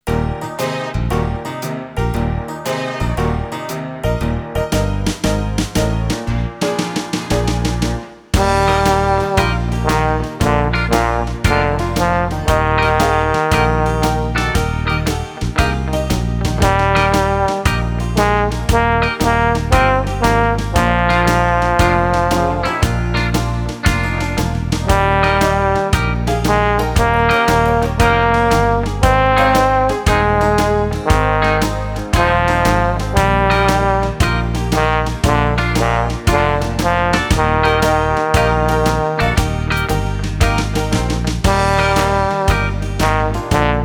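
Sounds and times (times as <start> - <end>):
trombone: 0.0 - 43.8.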